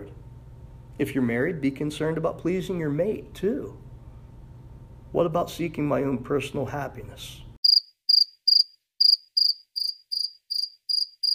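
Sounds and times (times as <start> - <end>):
speech: 1.0 - 3.8, 5.1 - 7.4
cricket chirping in short high trills: 7.6 - 11.3.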